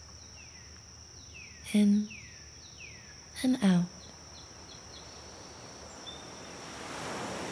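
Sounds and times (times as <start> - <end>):
speech: 1.7 - 2.2, 3.4 - 4.0
ocean waves washing in steady surf at sunrise: 5.2 - 7.4.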